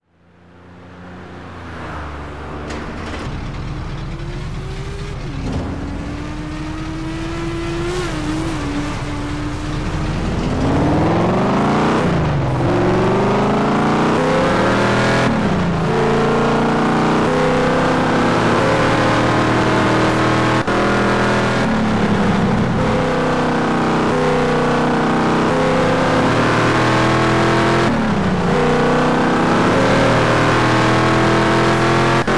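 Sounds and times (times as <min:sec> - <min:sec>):
Chevrolet Camaro Z28 engine: 0:00.0 - 0:32.3.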